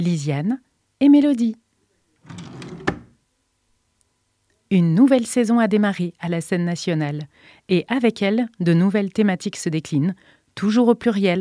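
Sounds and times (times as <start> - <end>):
speech: 0.0 - 1.6, 2.2 - 2.6, 4.7 - 11.3
drawer sliding open: 2.2 - 3.2.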